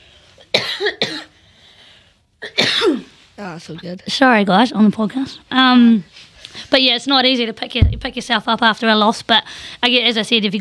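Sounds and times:
person coughing: 0.5 - 1.4, 2.4 - 3.1
speech: 0.7 - 1.3, 2.4 - 10.6.

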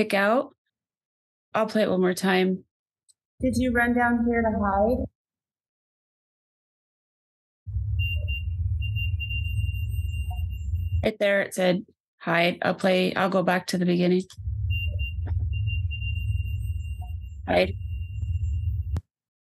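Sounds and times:
speech: 0.0 - 0.6, 1.5 - 2.7, 3.4 - 5.2, 11.0 - 14.5, 17.5 - 17.8
REM pod device electronic alarm: 7.7 - 11.1, 14.4 - 19.0
constant low rumble: 7.7 - 11.1, 14.3 - 19.0.

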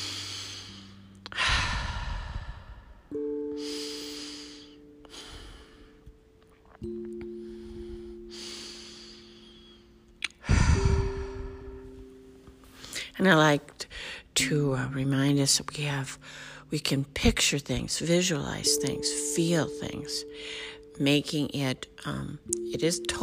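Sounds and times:
deep cleansing breaths during a guided meditation: 0.0 - 6.1, 7.2 - 12.1, 13.9 - 14.4, 20.3 - 20.9
soft sustained musical tones: 0.0 - 23.2
speech: 13.2 - 23.2.

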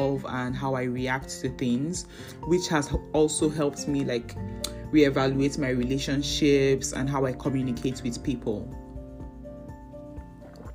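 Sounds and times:
speech: 0.1 - 8.8
person gulping water: 10.2 - 10.7.

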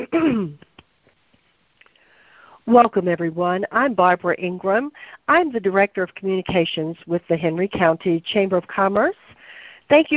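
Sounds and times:
speech: 0.0 - 0.7, 2.7 - 9.3, 9.9 - 10.1
voiced throat clearing with a falling groaning pitch: 0.0 - 0.7
breaths: 1.8 - 2.7, 4.9 - 5.3, 9.3 - 9.9.

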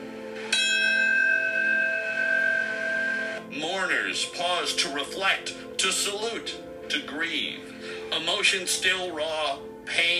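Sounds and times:
heavy bell tolling at memorial ceremony: 0.5 - 3.4
speech: 3.6 - 10.1.

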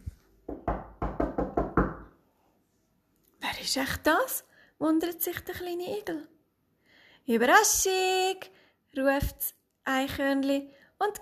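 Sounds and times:
firm knocks on a wooden door: 0.5 - 2.1
speech: 3.6 - 6.3, 7.2 - 11.2.

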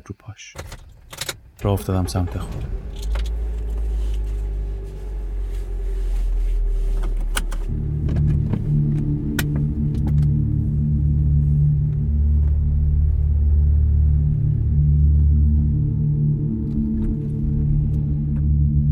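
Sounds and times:
speech: 0.1 - 0.8, 1.6 - 3.1
car engine idling with low rumble: 0.7 - 18.9
car power window humming downward: 1.6 - 12.0.

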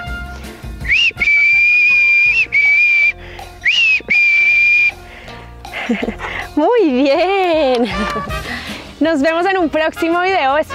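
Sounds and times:
loud whistle calling a dog in a recall exercise: 0.8 - 5.0
laughter: 5.7 - 6.5, 7.3 - 8.6
speech: 5.9 - 10.7.

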